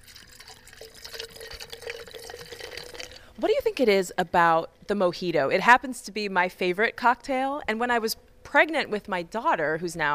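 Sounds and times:
sparkling water pouring into a glass for a mojito cocktail: 0.0s - 3.3s
speech: 3.4s - 10.1s.

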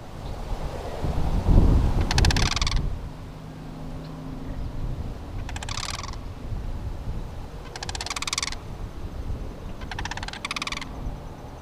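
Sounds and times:
low rumble of wind: 0.0s - 11.5s
pair of sandhill cranes calling during fall migration near Bath: 2.0s - 3.0s, 5.3s - 11.5s.

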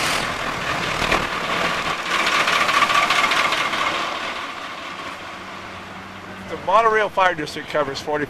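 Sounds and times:
large vehicle engine starting and running: 0.0s - 4.5s
speech: 6.7s - 8.2s.

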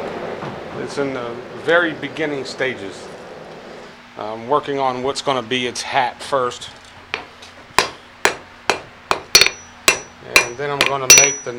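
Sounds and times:
speech: 0.8s - 3.2s, 4.2s - 6.8s, 10.6s - 11.5s
blacksmith's hammer striking metal on an anvil: 7.2s - 11.5s.

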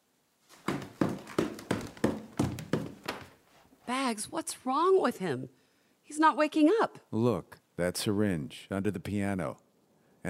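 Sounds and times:
loud firm hollow knocking on a door: 0.7s - 3.2s
speech: 4.1s - 9.6s.

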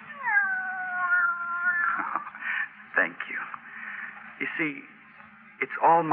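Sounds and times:
cat meowing: 0.1s - 2.2s
speech: 4.6s - 5.0s, 5.6s - 6.1s.

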